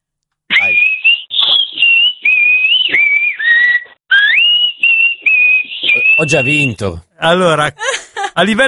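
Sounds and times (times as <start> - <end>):
person whistling a sustained melody with pitch bends: 0.5 - 6.8
speech: 6.2 - 8.6.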